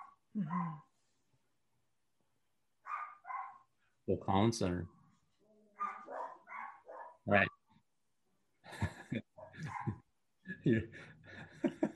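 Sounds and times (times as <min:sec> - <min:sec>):
speech: 0:00.4 - 0:00.9, 0:04.1 - 0:05.0, 0:07.2 - 0:07.6, 0:08.7 - 0:10.0, 0:10.6 - 0:11.1
puppies barking and yipping high-pitched: 0:02.9 - 0:03.6, 0:05.8 - 0:07.2, 0:09.4 - 0:10.0
laughter: 0:08.6 - 0:11.9.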